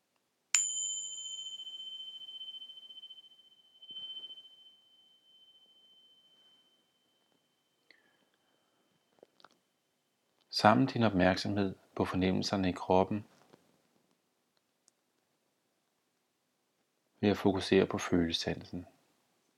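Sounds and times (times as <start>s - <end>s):
bell ringing to start exercise: 0.6s - 7.4s
speech: 10.5s - 13.3s, 17.2s - 19.0s.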